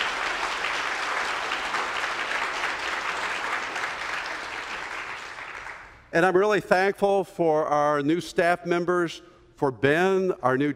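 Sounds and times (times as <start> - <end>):
large audience applauding: 0.0 - 6.0
speech: 6.1 - 10.7.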